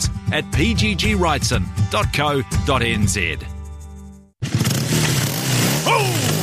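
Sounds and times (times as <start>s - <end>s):
speech: 0.3s - 3.5s
just-repaired motorcycle engine roaring and revving: 4.4s - 6.4s.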